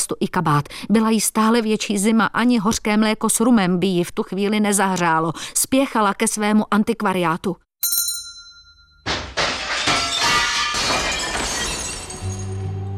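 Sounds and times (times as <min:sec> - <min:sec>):
speech: 0:00.1 - 0:08.0
bookshop display window glass shattering in a fire: 0:09.1 - 0:12.8
glass shards tinkling and settling: 0:09.4 - 0:12.7.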